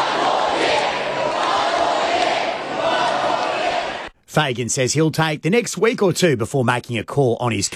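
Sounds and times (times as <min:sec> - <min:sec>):
large crowd of fans chanting and shouting outdoors: 0:00.0 - 0:04.2
speech: 0:04.4 - 0:07.7.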